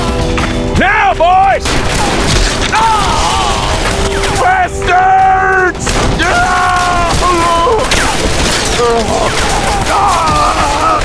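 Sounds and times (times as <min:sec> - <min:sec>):
voices shouting and crying out: 0:00.0 - 0:11.0
sustained hail of gunfire with heavy booms: 0:01.6 - 0:04.9, 0:05.8 - 0:11.0.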